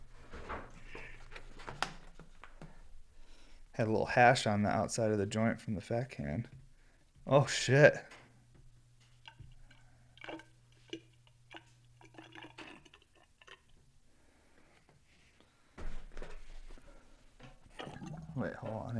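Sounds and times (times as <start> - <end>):
speech: 3.8 - 6.6, 7.3 - 8.2
water being poured into a bong fitted with a nail: 9.2 - 13.8, 17.7 - 18.9
louder gurgling burst of water in a bong: 10.2 - 13.8, 17.7 - 18.9.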